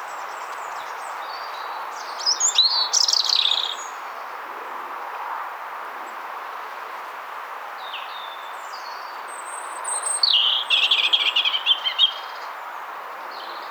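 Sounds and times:
European robin singing: 0.4 - 4.0, 7.9 - 12.5.

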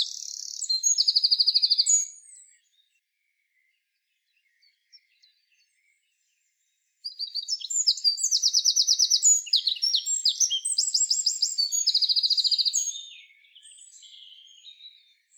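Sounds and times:
Eurasian wren Troglodytes troglodytes song: 0.0 - 2.8, 7.0 - 15.3.

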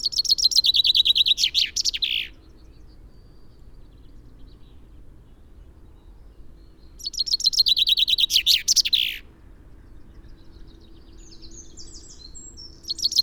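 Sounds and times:
common chaffinch Fringilla coelebs song: 0.0 - 13.2.

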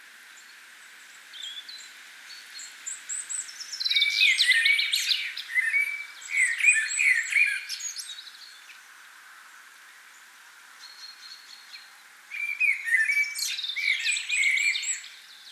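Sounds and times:
common blackbird Turdus merula singing: 1.3 - 8.8, 10.8 - 15.4.

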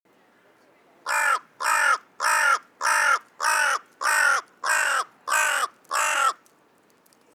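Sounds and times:
carrion crow cawing, Corvus corone: 1.1 - 6.5.

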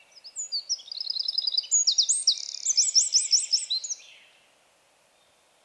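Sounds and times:
Eurasian wren Troglodytes troglodytes singing rapid high trills and ringing notes: 0.2 - 4.2.

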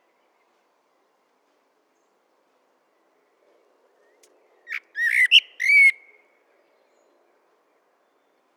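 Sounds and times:
common blackbird Turdus merula chip and whistled song: 4.0 - 6.2.

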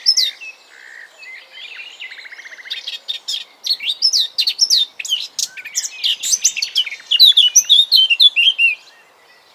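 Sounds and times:
Eurasian blackcap Sylvia atricapilla subsong and loud varied warbling: 0.0 - 9.5.

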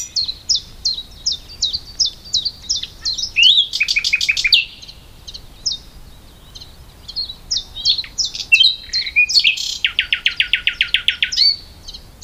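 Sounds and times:
common nightingale Luscinia megarhynchos singing downslurred notes and clicks: 0.0 - 12.2.

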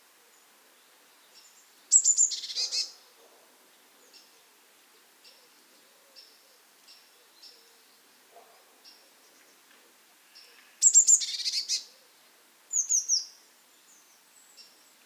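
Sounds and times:
Eurasian blue tit Cyanistes caeruleus calling: 1.4 - 3.0, 10.4 - 12.0, 12.7 - 13.4.

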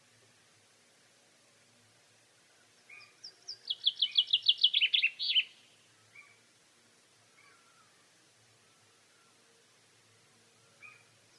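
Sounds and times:
common chaffinch song with descending notes: 2.9 - 5.7.

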